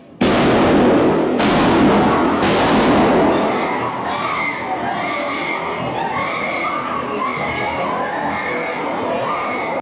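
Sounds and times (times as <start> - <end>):
crowd-like din of noise and commotion: 0.0 - 9.7
shotgun blasts fired inside a church: 0.2 - 3.4.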